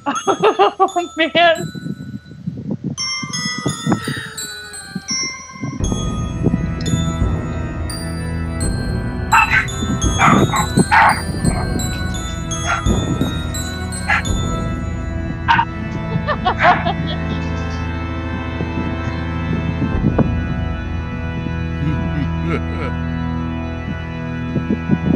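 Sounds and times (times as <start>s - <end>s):
laughter: 0.0s - 1.2s, 15.9s - 17.9s, 21.8s - 23.0s
sustained ringing instrumental music: 0.0s - 25.1s
speech: 0.2s - 1.8s
dog barking: 9.4s - 11.6s.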